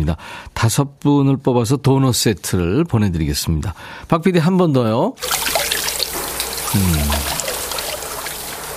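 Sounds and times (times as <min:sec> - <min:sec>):
speech: 0:00.0 - 0:05.5, 0:06.7 - 0:07.4
water splashing and pouring over a body in a bathhouse: 0:05.2 - 0:08.7
short low vocal hum: 0:06.7 - 0:07.4.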